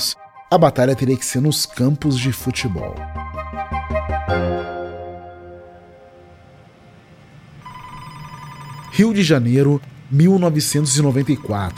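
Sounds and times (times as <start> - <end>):
speech: 0.5 - 3.4, 4.1 - 4.8, 9.0 - 11.7
hum: 4.9 - 11.7
steady dial tone: 7.6 - 9.1
electronic telephone tones: 7.6 - 9.4, 10.7 - 11.7.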